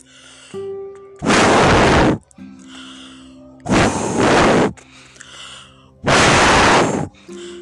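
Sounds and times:
voice imitating a wolf blowing hard: 1.2 - 2.2, 3.7 - 4.8, 6.1 - 7.6.

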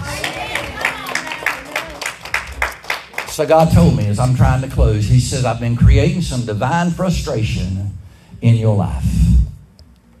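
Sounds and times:
murmur of voices in a large room: 0.0 - 2.5
crowd of people clapping hands in a large room: 0.0 - 4.7
speech: 3.4 - 9.4.

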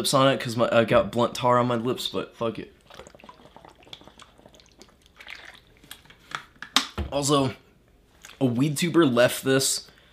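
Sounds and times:
speech: 0.0 - 3.1, 7.1 - 7.6, 8.4 - 9.9
spilled water dripping and splattering: 2.8 - 6.3.

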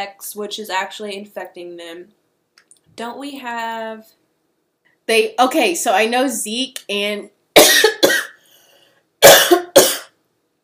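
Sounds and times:
speech: 0.0 - 2.2, 3.0 - 4.2, 5.1 - 7.4
person coughing from strawberry seeds caught in the throat: 7.6 - 8.4, 9.2 - 10.2.

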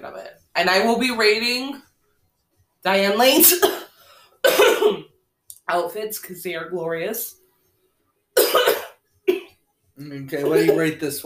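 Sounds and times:
speech: 0.0 - 1.8, 2.8 - 3.8, 5.7 - 7.4, 10.0 - 11.2
harsh coughs: 3.6 - 5.1, 8.4 - 9.5, 10.4 - 10.9.

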